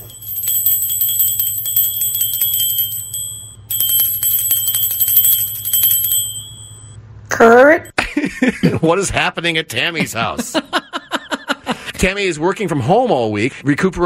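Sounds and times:
loud bell ringing with rapid metallic clatter: 0.0 - 7.0
low steady hum: 0.0 - 8.6
laughter: 8.0 - 8.9, 10.0 - 11.9
speech: 8.4 - 10.8, 12.0 - 14.0.

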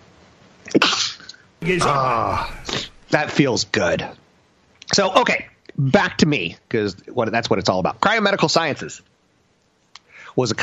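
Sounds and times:
person sneezing: 1.6 - 3.1
person speaking loudly: 1.6 - 3.3
speech: 1.6 - 4.2, 4.9 - 9.1, 10.4 - 10.6.

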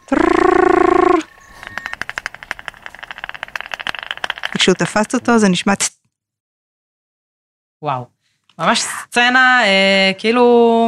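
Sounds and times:
bat echolocation through a bat detector approaching insect: 0.3 - 5.5
speech: 4.7 - 6.0, 7.8 - 10.8.

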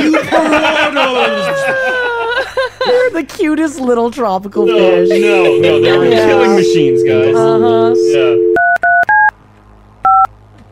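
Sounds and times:
laughter: 0.0 - 3.2, 4.8 - 6.6
speech: 3.2 - 8.5
touch-tone phone keypad beeps: 4.6 - 9.0.

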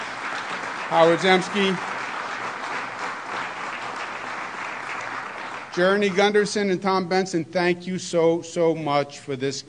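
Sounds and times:
crowd at a public event applauding a speaker: 0.0 - 6.7
speech: 0.9 - 1.9, 5.8 - 9.6.

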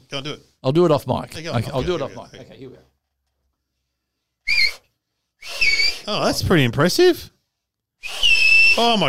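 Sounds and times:
speech: 0.1 - 2.9, 6.1 - 7.3, 8.0 - 9.0
loud piercing finger whistle: 4.4 - 6.1, 8.0 - 9.0.

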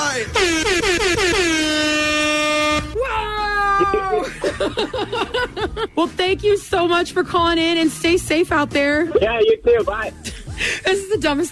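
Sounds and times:
truck air horn honking: 0.0 - 3.0
speech: 0.2 - 0.9, 4.8 - 11.4
laughter: 3.8 - 6.1, 9.3 - 11.1.

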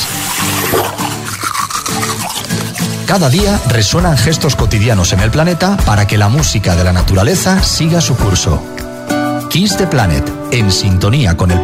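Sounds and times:
toothbrush scrubbing teeth: 0.0 - 3.7
speech: 3.1 - 8.8, 9.5 - 11.6.

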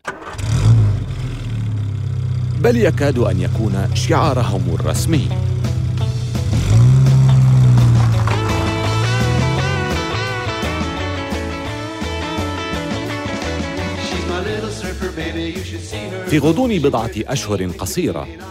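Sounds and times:
409 V8 engine of an Impala convertible roaring: 0.0 - 16.2
speech: 2.6 - 5.5, 15.4 - 18.5
rhythmic music: 5.0 - 18.5.

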